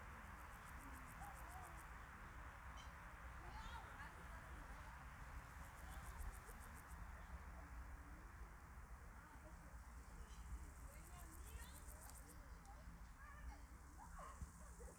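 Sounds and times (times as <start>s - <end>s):
Biguttulus grasshopper chirping in the background: 0.0s - 14.9s.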